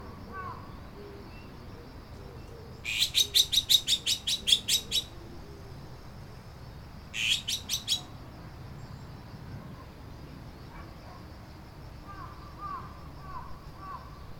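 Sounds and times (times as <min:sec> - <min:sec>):
low steady background hiss: 0:00.0 - 0:14.3
bird rapid sharp chirps: 0:02.4 - 0:05.2, 0:07.2 - 0:08.1.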